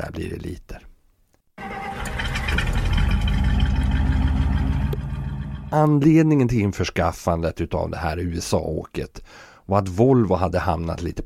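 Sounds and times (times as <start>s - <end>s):
speech: 0.0s - 0.8s, 5.7s - 11.2s
six-cylinder engine of an American four-door police sedan, 145 horsepower, 225 cubic inches: 1.6s - 6.1s.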